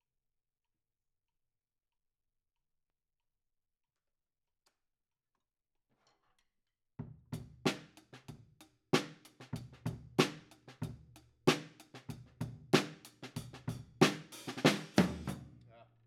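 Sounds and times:
drum kit at 94 bpm: 7.2s - 8.4s, 9.0s - 15.6s.

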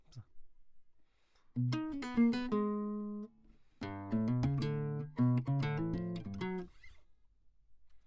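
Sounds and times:
classical guitar: 1.6s - 7.0s.

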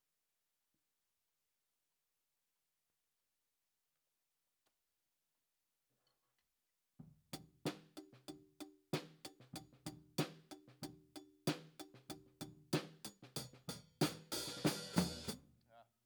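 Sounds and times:
hi-hat at 94 bpm: 9.0s - 15.4s.

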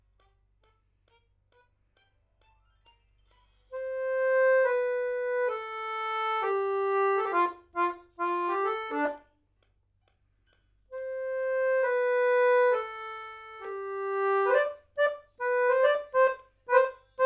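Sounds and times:
accordion: 3.7s - 9.3s, 10.9s - 17.2s.

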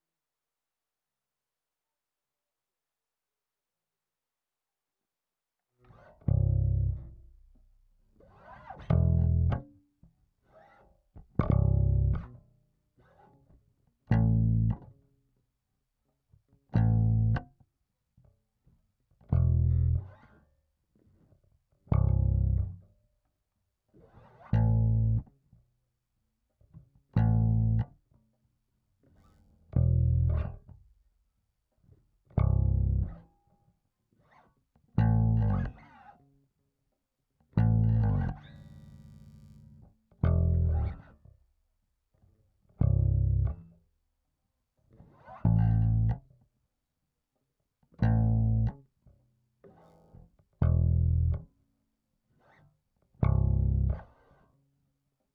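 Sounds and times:
bass through 1176 compressor: 5.8s - 15.4s, 16.4s - 17.7s, 19.0s - 23.1s, 23.9s - 25.7s, 26.6s - 28.2s, 29.0s - 33.5s, 34.8s - 36.2s, 37.4s - 41.6s, 42.2s - 44.0s, 44.9s - 46.5s, 47.9s - 51.6s, 53.0s - 54.4s.

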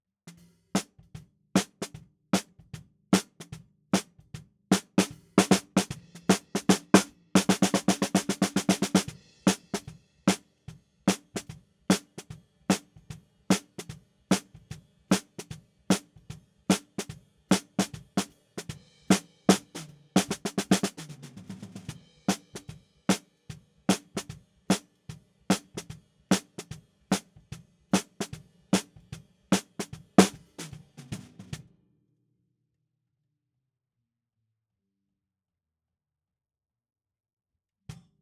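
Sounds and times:
snare drum bottom: 0.8s - 10.5s, 11.1s - 23.3s, 23.9s - 24.9s, 25.5s - 31.6s.

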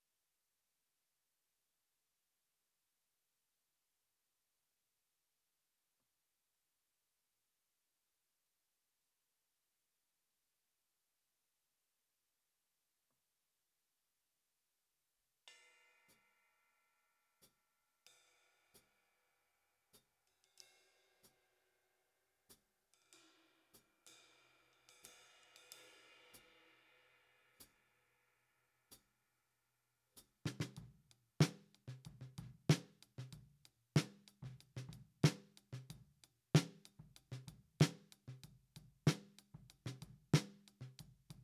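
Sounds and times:
snare drum top: 30.5s - 41.4s.

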